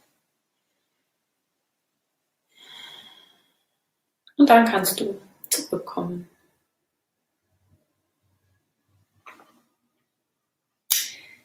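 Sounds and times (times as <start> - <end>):
deep breath in and out during a relaxation meditation: 2.5 - 3.9
speech: 4.4 - 6.4.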